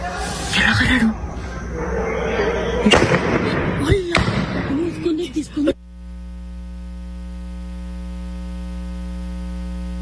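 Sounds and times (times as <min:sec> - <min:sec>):
outdoor noise: 0:00.0 - 0:10.0
speech: 0:00.6 - 0:01.3, 0:02.8 - 0:03.2
gunshot: 0:02.9 - 0:04.7.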